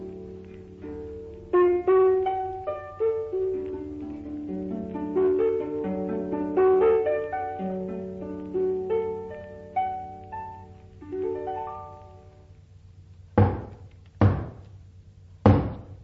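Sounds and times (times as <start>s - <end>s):
plucked musical notes: 0.0s - 12.3s
heavy knocks on a door: 13.4s - 14.6s, 15.4s - 16.0s.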